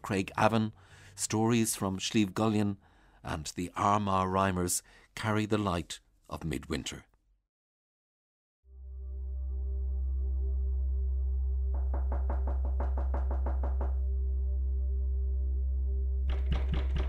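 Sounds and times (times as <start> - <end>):
speech: 0.1 - 7.1
steady low hum: 8.7 - 17.0
knocking on a wooden door: 11.8 - 14.0, 16.3 - 17.0.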